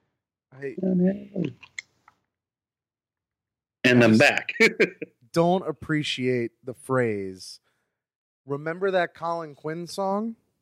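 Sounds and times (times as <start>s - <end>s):
speech: 0.6s - 1.7s, 3.8s - 7.6s, 8.5s - 10.4s
vocal murmur: 3.9s - 5.1s
laughter: 4.0s - 5.1s.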